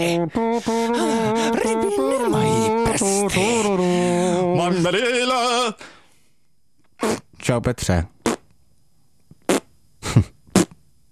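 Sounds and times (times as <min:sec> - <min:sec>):
speech: 0:00.0 - 0:05.9, 0:07.0 - 0:08.2
short loud brassy farting bursts: 0:07.0 - 0:07.3, 0:08.2 - 0:08.5, 0:09.4 - 0:09.7, 0:10.5 - 0:10.8.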